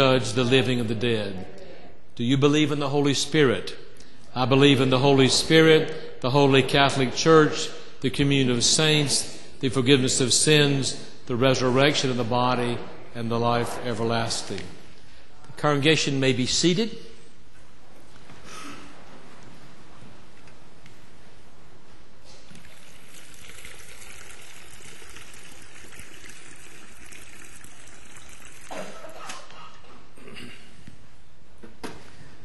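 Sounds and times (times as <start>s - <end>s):
speech: 0.0s - 1.6s, 2.2s - 3.8s, 4.4s - 14.8s, 15.6s - 17.1s
water poured into a baptismal font during a church baptism: 22.5s - 29.0s.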